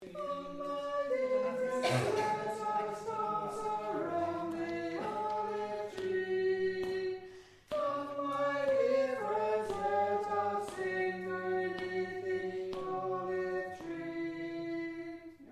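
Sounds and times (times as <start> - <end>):
tenor chorus singing slowly: 0.0 - 15.5.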